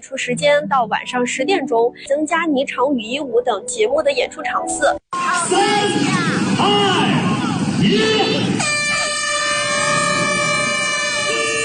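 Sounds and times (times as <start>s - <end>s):
speech: 0.1s - 7.1s, 7.8s - 8.4s
air horn signalling start of a cycling ride: 8.6s - 11.6s.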